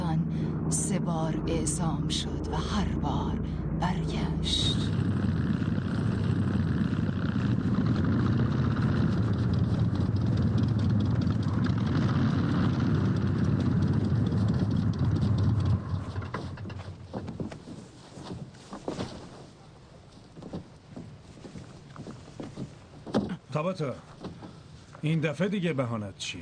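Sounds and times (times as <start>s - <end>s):
aircraft engine drone losing power: 0.0s - 17.3s
speech: 0.7s - 5.4s, 23.6s - 24.1s, 25.0s - 26.3s.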